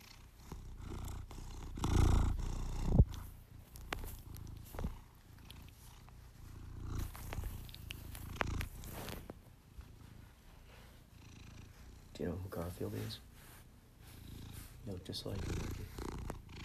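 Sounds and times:
cat purring: 0.0 - 16.6
small clicks and rustles: 2.9 - 10.4
speech: 12.2 - 13.3, 14.8 - 15.8.

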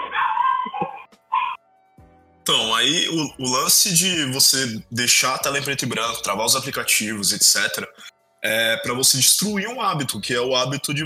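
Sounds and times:
small dogs barking and yipping: 0.0 - 1.6
speech: 2.4 - 11.0.

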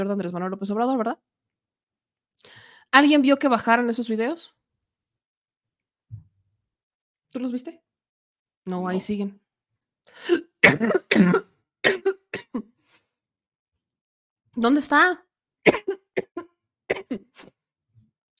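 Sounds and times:
speech: 0.0 - 1.4, 2.4 - 4.6, 7.3 - 7.8, 8.7 - 9.4, 10.1 - 12.0, 14.6 - 16.0, 16.9 - 17.5
person coughing harshly: 10.3 - 12.7, 15.7 - 17.4.

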